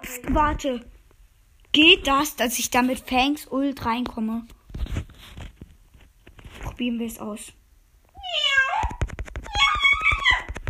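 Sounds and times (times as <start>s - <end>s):
speech: 0.0s - 1.0s, 1.7s - 4.6s, 6.8s - 7.6s
voice imitating a cat meowing: 8.2s - 10.6s.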